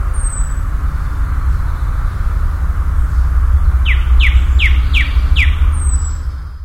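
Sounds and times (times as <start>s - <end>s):
common nightingale singing: 0.0s - 6.6s
heavy low rumbling: 0.0s - 6.6s.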